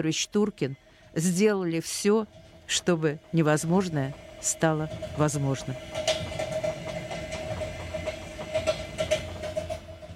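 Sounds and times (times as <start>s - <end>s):
speech: 0.0s - 6.2s
express passenger train rumbling along rails: 0.0s - 10.1s
faint whining hum of express passenger train: 0.0s - 10.1s
rhythmic clattering clicks from train wheels: 2.0s - 10.1s.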